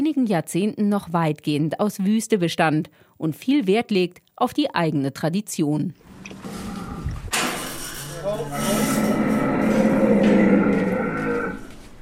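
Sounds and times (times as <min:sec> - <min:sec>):
speech: 0:00.0 - 0:06.6
unhappy camel groaning bellow on a farm west of Doha in Qatar: 0:06.4 - 0:07.4, 0:08.3 - 0:11.8.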